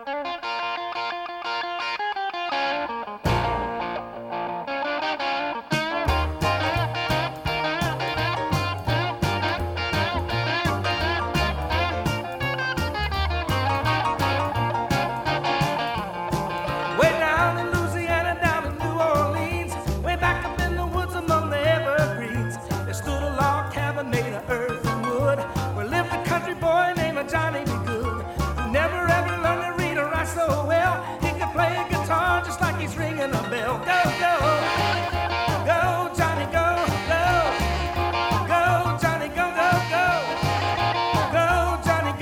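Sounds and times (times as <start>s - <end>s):
solo electric guitar riff: 0.0s - 18.2s, 33.6s - 42.1s
full rock and roll band with driving bass and steady drums: 0.0s - 42.1s.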